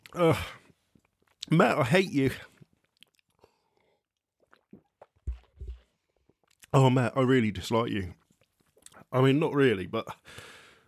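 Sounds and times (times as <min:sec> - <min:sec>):
person chewing food mostly on one side: 0:00.0 - 0:01.5, 0:02.4 - 0:06.7
speech: 0:00.2 - 0:00.6, 0:01.5 - 0:02.5, 0:06.8 - 0:08.2, 0:09.1 - 0:10.5.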